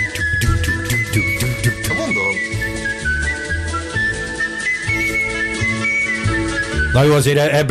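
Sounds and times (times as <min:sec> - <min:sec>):
full band backing: 0:00.0 - 0:07.4
whistled melody: 0:00.0 - 0:07.6
deep plucked bass: 0:00.4 - 0:02.4
speech: 0:07.0 - 0:07.6.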